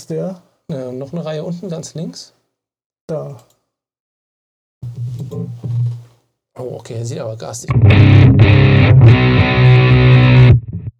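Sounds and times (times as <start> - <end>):
speech: 0.0 - 2.4, 3.1 - 3.6, 6.6 - 9.2
heavily distorted electric guitar chords through a distortion effects pedal: 7.7 - 10.9.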